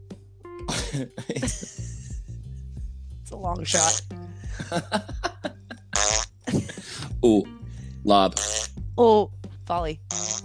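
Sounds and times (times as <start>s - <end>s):
laughter: 0.7s - 2.4s, 4.5s - 7.1s
speech: 0.9s - 1.9s, 3.3s - 5.2s, 7.2s - 10.3s
farts: 5.9s - 6.4s, 8.3s - 8.8s, 10.1s - 10.4s.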